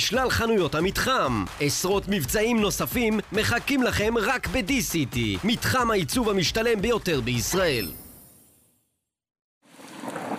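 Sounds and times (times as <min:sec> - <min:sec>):
speech: 0:00.1 - 0:08.0
rain falling: 0:09.7 - 0:10.3.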